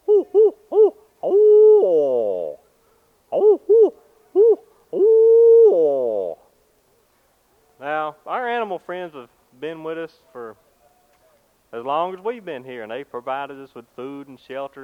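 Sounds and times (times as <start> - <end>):
hoot owl hooting: 0.0 - 2.7, 3.3 - 6.5
speech: 11.7 - 14.8.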